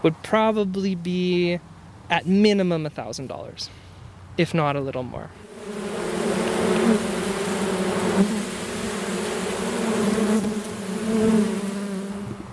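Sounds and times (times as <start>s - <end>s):
speech: 0.0s - 3.8s, 4.4s - 6.0s
honeybees buzzing around Langstroth box hives: 5.4s - 12.5s.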